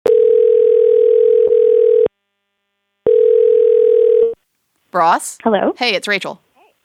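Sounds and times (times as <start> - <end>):
buzzy telephone dial tone: 0.1 - 2.1, 3.1 - 4.4
speech: 4.9 - 6.5.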